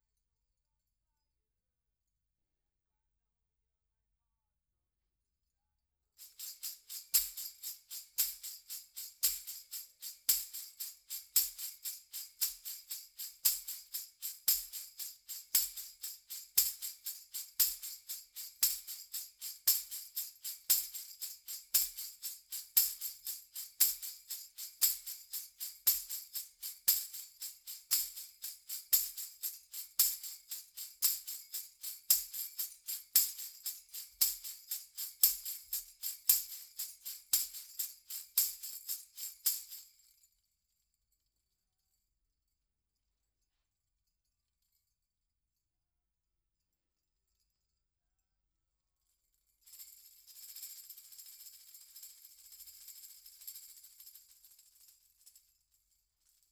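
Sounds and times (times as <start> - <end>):
dynamic percussion: 6.2 - 40.2, 49.6 - 55.4.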